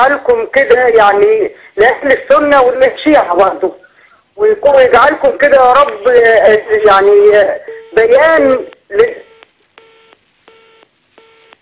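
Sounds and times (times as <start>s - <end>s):
speech: 0.0s - 3.8s, 4.4s - 9.2s
telephone busy tone after a call line drops: 7.8s - 11.6s.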